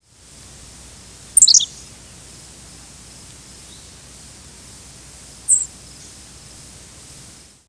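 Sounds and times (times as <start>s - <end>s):
steady faint hiss: 0.0s - 7.6s
Henslow's sparrow high thin chirp: 1.4s - 1.9s, 5.5s - 6.2s.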